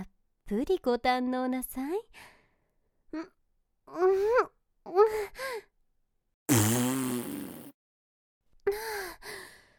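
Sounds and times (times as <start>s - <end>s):
speech: 0.5s - 2.3s, 3.1s - 5.7s
long loud buzzy fart sound made with the voice: 6.5s - 7.8s.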